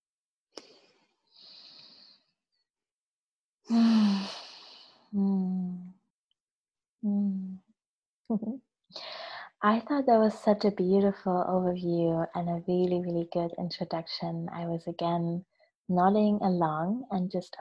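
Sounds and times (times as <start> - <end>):
speech: 3.7 - 3.9, 8.3 - 17.5
really deep breath with breathy sigh: 3.7 - 5.0.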